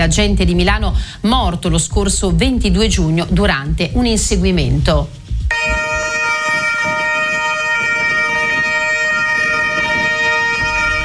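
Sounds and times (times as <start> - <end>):
speech: 0.0 - 5.2
low rumble: 0.0 - 5.8
police patrol car sirens wailing in unison: 5.5 - 11.0.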